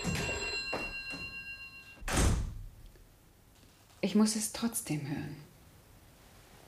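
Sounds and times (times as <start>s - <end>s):
telephone ringing with a trilling electric bell in a home: 0.0s - 2.0s
speech: 4.0s - 5.5s.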